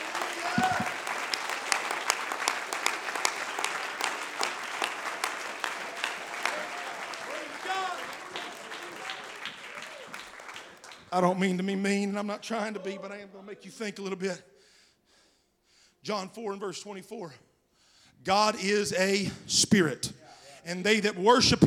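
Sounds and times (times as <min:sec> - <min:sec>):
crowd clapping: 0:00.0 - 0:11.4
speech: 0:11.1 - 0:14.5, 0:16.0 - 0:17.5, 0:18.2 - 0:20.1, 0:20.7 - 0:21.6.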